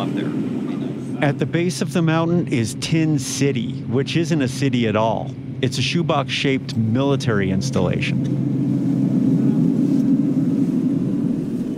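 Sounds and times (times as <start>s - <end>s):
small plane engine rumble landing on a gravel landing strip: 0.0s - 11.7s
speech: 1.2s - 8.6s.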